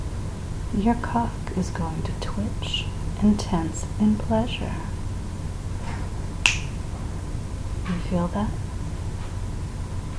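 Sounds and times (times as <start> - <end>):
low steady hum: 0.0 - 10.1
speech: 0.8 - 5.0, 7.9 - 8.7
finger snap: 6.4 - 6.8.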